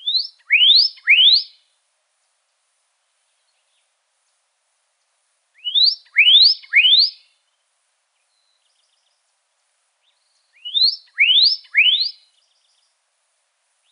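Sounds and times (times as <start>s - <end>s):
Pyrrhuloxia uttering upward-sliding whistles in Arizona: 0.0s - 1.5s, 5.6s - 7.2s, 10.6s - 12.2s.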